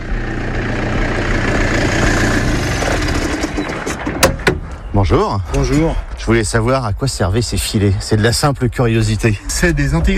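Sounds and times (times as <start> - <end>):
vineyard tractor diesel engine droning: 0.0 - 6.7
speech: 5.1 - 10.1.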